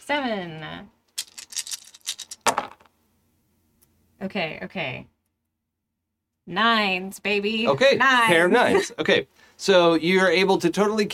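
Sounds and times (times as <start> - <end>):
speech: 0.1 - 1.0, 4.2 - 5.1, 6.4 - 11.1
dice rattling and clattering across a hard surface: 1.2 - 2.9.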